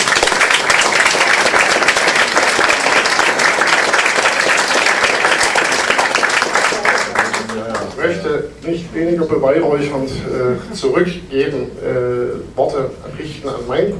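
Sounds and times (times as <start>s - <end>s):
audience applause: 0.0s - 8.0s
speech: 8.7s - 13.9s.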